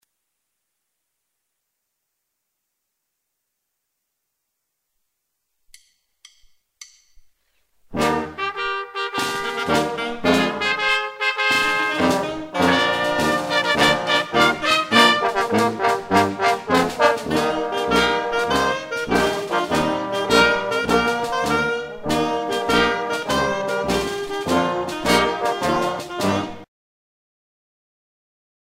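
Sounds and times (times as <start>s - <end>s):
wind band music: 7.9s - 26.7s.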